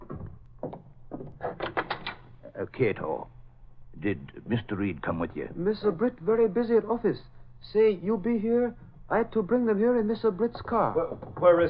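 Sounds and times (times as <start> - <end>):
door opening thumps and clicks: 0.0 - 2.4, 10.6 - 11.6
speech: 2.7 - 3.4, 4.0 - 11.6.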